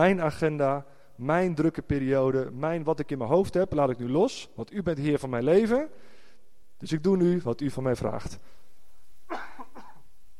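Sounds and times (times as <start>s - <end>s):
speech: 0.0s - 6.1s, 6.8s - 8.6s
faint steady hum: 0.0s - 10.3s
person coughing: 9.3s - 10.1s.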